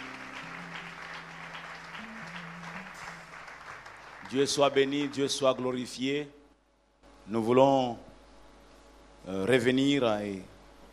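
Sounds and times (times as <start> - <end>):
church congregation clapping: 0.0 - 6.2
speech: 4.3 - 6.4, 7.3 - 8.1, 9.2 - 10.5.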